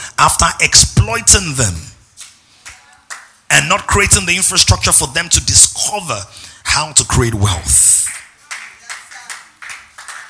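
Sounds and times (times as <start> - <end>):
speech: 0.2 - 2.0, 3.5 - 8.2
audience clapping in a steady rhythm: 2.6 - 3.4, 7.7 - 10.2.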